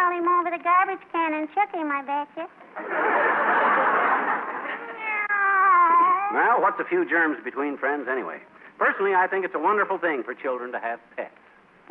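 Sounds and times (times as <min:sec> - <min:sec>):
speech: 0:00.8 - 0:04.9, 0:06.3 - 0:11.8
laughter: 0:02.7 - 0:05.3
cat meowing: 0:04.8 - 0:06.5.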